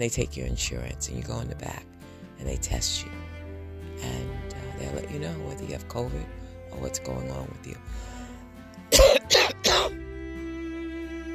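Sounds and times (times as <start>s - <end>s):
speech: 0.0s - 3.3s, 4.0s - 8.1s
harsh raspy coughs: 8.9s - 10.0s.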